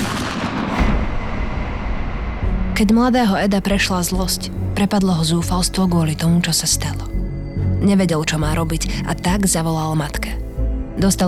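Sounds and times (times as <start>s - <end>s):
loud gunshot with rumbling reverberation: 0.0s - 2.7s
speech: 2.8s - 7.2s, 7.8s - 10.4s, 11.0s - 11.2s.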